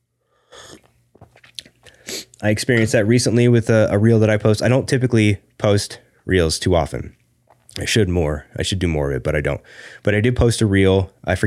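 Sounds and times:
sipping tea from a cup: 0:00.5 - 0:02.4
swallow: 0:00.6 - 0:02.0
soft wet mouth clicks: 0:00.6 - 0:02.4
speech: 0:02.4 - 0:07.2, 0:07.8 - 0:11.4.

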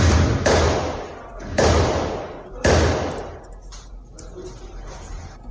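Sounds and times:
loud gunshots during a credit cooperative robbery in Nova Bandeirantes: 0:00.0 - 0:03.4.

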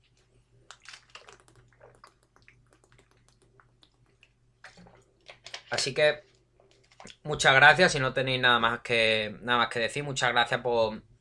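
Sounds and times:
person gulping and swallowing water: 0:00.6 - 0:05.4
speech: 0:05.7 - 0:06.3, 0:07.2 - 0:11.1.

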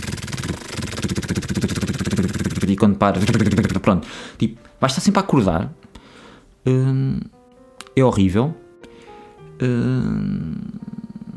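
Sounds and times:
voice imitating a cat purring: 0:00.0 - 0:04.0, 0:09.6 - 0:11.3
speech: 0:02.7 - 0:05.8, 0:06.6 - 0:07.4, 0:08.0 - 0:08.6, 0:09.6 - 0:10.8.

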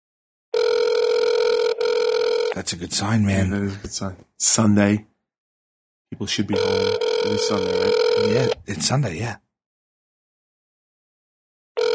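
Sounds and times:
ringback tone on an outgoing phone call: 0:00.6 - 0:02.6, 0:06.5 - 0:08.6
speech: 0:02.6 - 0:05.1, 0:06.1 - 0:09.4.

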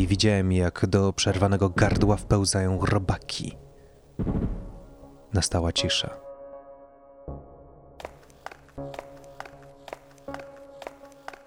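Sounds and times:
speech: 0:00.0 - 0:03.6, 0:04.2 - 0:04.6, 0:05.3 - 0:06.2
quick running footsteps with a hollow echo: 0:08.0 - 0:11.4.

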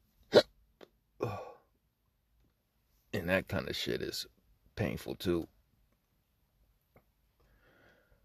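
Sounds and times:
hiccups: 0:00.3 - 0:00.6
speech: 0:03.2 - 0:05.6.

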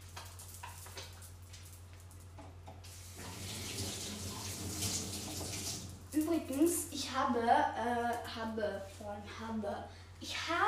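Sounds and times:
hands being washed under running tap water: 0:02.8 - 0:06.2
speech: 0:06.2 - 0:10.6.

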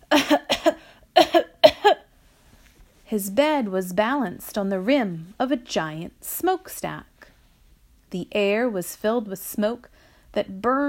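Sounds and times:
harsh coughs in sharp double hacks: 0:00.0 - 0:02.1
speech: 0:03.1 - 0:07.1, 0:08.1 - 0:10.8.

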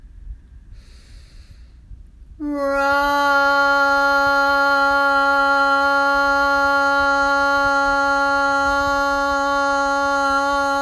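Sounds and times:
low rumble: 0:00.0 - 0:10.8
slow airy inhale during a guided toning meditation: 0:00.7 - 0:01.9
speech: 0:02.4 - 0:03.0.

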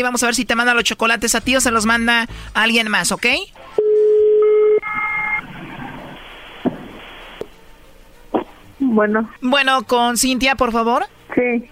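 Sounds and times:
speech: 0:00.0 - 0:03.6, 0:09.0 - 0:11.6
telephone dialing tones and clicks: 0:03.8 - 0:07.5
faint telephone line noise: 0:04.8 - 0:07.6.

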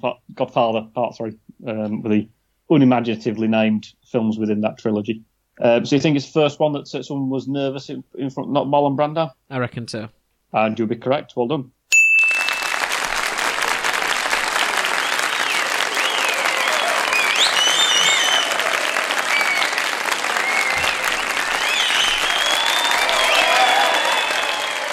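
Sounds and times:
speech: 0:00.0 - 0:11.8
crowd applauding: 0:12.2 - 0:24.9
faint whistles or cheers: 0:15.0 - 0:24.9.

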